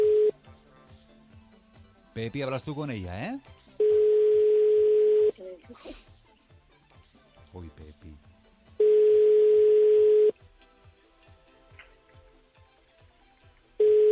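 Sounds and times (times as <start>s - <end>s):
brief phone tone: 0.0s - 0.4s, 3.8s - 5.3s, 8.8s - 10.3s, 13.8s - 14.1s
speech: 2.2s - 3.6s, 5.7s - 6.0s, 7.6s - 8.3s.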